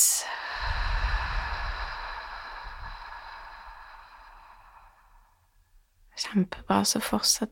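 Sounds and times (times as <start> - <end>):
slow exhale during a breathing exercise: 0.0 - 5.6
speech: 6.2 - 7.5.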